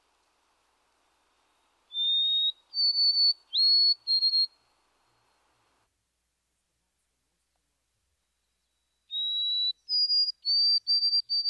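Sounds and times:
white-throated sparrow whistled song: 0:01.4 - 0:05.4, 0:08.2 - 0:11.4.

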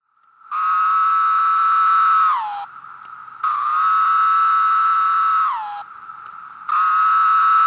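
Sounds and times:
Linnaeus's 17-year cicada buzzing whine song: 0:00.4 - 0:07.6.

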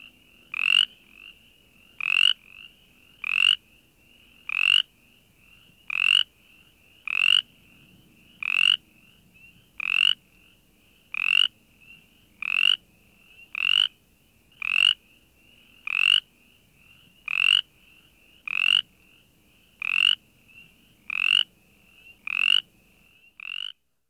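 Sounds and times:
Brimley's chorus frog raspy rattling call: 0:00.5 - 0:03.6, 0:04.3 - 0:04.9, 0:05.5 - 0:06.3, 0:07.0 - 0:14.0, 0:14.6 - 0:15.0, 0:15.6 - 0:23.8.

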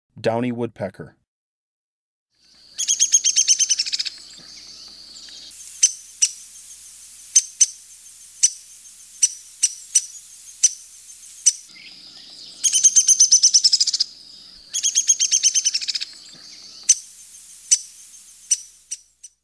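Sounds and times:
downy woodpecker: 0:02.5 - 0:19.4.

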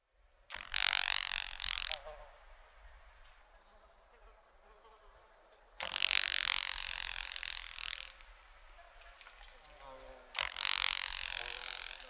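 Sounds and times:
Carolina grasshopper crackling rattle bursts: 0:00.5 - 0:03.4, 0:05.7 - 0:12.0
soft high buzz: 0:00.5 - 0:12.0.

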